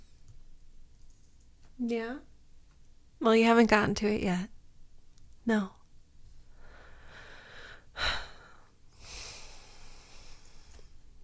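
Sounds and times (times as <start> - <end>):
speech: 1.8 - 2.3, 3.2 - 4.5, 5.5 - 5.8
heavy breathing: 6.5 - 11.0.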